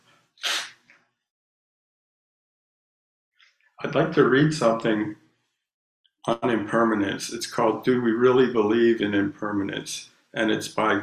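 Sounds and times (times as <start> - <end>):
nose blowing: 0.4 - 0.8
speech: 3.8 - 5.2, 6.3 - 11.0.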